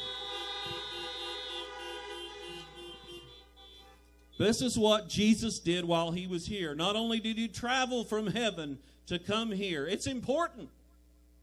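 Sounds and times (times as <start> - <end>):
many car horns honking for nurses, medical workers and front-line workers: 0.0 - 4.8
speech: 4.4 - 10.8.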